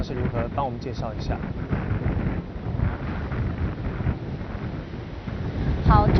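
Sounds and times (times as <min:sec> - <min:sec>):
strong typhoon wind after landfall: 0:00.0 - 0:06.1
speech: 0:00.1 - 0:02.0, 0:05.9 - 0:06.1.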